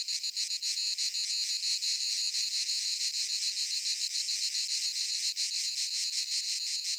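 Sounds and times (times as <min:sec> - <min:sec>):
cicadas: 0:00.0 - 0:06.9.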